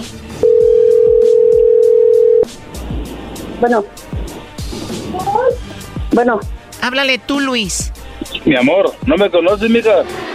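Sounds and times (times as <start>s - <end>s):
steady single-pitch telephone tone during a redialed call: 0.4s - 2.5s
speech: 3.6s - 4.2s, 6.2s - 10.2s.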